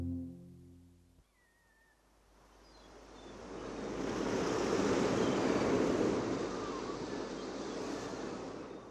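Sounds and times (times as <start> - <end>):
sea waves on the shore: 2.3 - 8.8.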